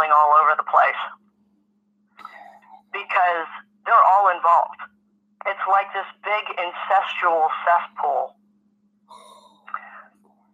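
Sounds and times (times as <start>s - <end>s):
faint steady hum: 0.0s - 10.5s
speech: 0.1s - 1.2s, 3.0s - 8.4s
deep audible gasping breath drawn in and breathy exhale: 9.1s - 10.2s.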